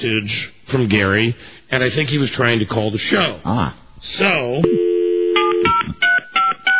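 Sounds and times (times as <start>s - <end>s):
speech: 0.0s - 4.9s
cell phone keypad tones dialing to retrieve voicemail: 4.6s - 6.7s
cell phone dial tone: 4.7s - 6.7s.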